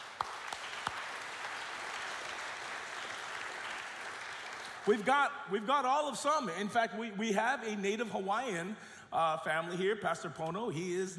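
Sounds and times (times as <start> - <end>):
audience applause: 0.0 - 5.0
speech: 4.9 - 11.1.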